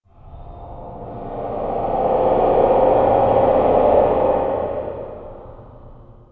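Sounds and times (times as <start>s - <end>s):
eerie sound: 0.0s - 6.3s.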